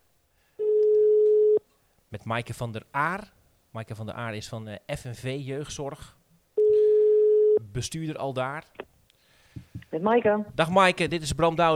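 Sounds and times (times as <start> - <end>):
telephone ringing tone on an outgoing call: 0.6 - 1.6, 6.6 - 7.6
speech: 2.1 - 6.2, 7.6 - 8.8, 9.9 - 11.7.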